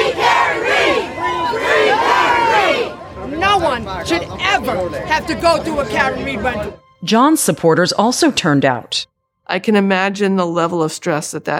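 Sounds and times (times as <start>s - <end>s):
large crowd of protesters chanting in unison outside a courthouse: 0.0s - 6.8s
speech: 4.0s - 11.5s.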